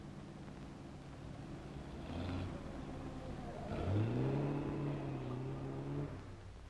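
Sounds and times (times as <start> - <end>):
car engine accelerating and driving past: 1.3 - 6.5.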